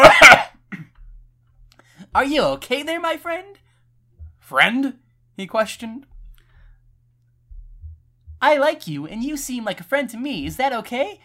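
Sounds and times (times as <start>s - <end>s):
person coughing loudly to get attention while leaving a shop: 0.0s - 1.0s
speech: 2.1s - 3.6s, 4.5s - 6.1s, 8.4s - 11.2s.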